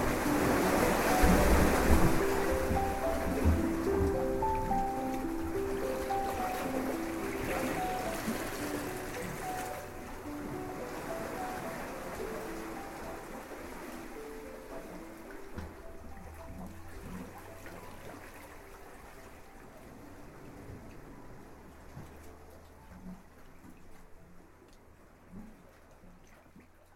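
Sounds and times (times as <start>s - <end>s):
wind gusting: 0.0s - 17.6s
ocean surf breaking on shore: 0.0s - 22.8s.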